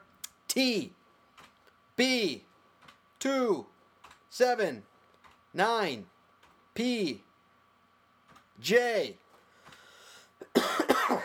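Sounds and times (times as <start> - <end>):
speech: 0.6 - 1.0, 2.0 - 2.5, 3.2 - 3.7, 4.3 - 4.9, 5.5 - 6.1, 6.8 - 7.3, 8.6 - 9.2
faint throat clearing: 10.4 - 11.2
harsh coughs: 10.4 - 11.2.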